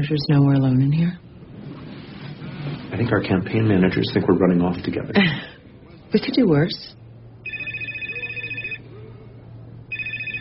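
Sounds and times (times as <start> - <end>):
speech: 0.0 - 1.3, 2.9 - 5.5, 6.1 - 7.0
electronic telephone ringing: 7.4 - 8.9, 9.9 - 10.3.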